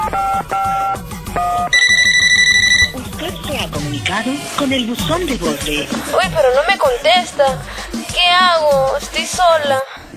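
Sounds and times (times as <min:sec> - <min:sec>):
phone line tone for a mobile phone call: 0:00.0 - 0:03.0
bright steady electronic phone ringing pattern: 0:01.7 - 0:03.0
speech: 0:04.0 - 0:09.9.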